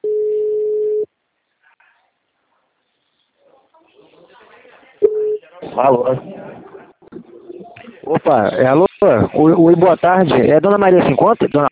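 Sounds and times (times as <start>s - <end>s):
telephone call tone while dialing a client: 0.0s - 1.1s
speech: 5.8s - 6.4s, 8.1s - 11.7s.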